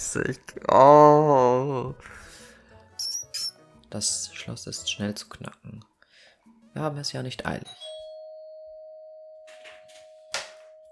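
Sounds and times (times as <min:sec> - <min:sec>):
speech: 0:00.0 - 0:02.2, 0:03.9 - 0:05.9, 0:06.8 - 0:07.9
doorbell ringing with a steady electronic tone: 0:07.7 - 0:10.9.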